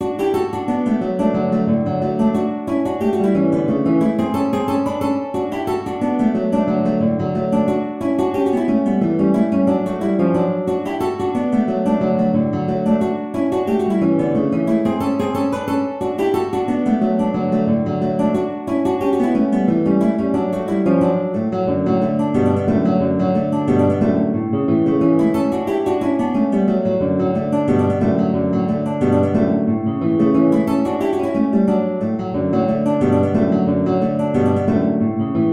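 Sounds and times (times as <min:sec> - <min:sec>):
guitars: 0:00.0 - 0:35.5.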